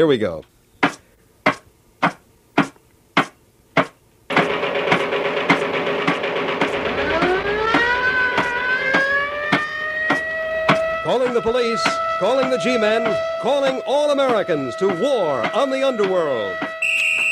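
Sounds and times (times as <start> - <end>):
speech: 0.0 - 0.5, 11.4 - 16.6
sharp bangs: 0.8 - 17.3
droning roar: 4.4 - 15.1
mechanical siren sound effect played from a record on a turntable: 6.8 - 14.0, 16.6 - 17.3.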